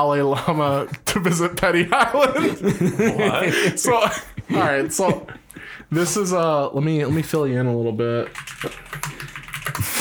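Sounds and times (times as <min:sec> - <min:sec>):
speech: 0:00.0 - 0:08.9
laughter: 0:00.3 - 0:05.8
keyboard typing: 0:08.2 - 0:09.9.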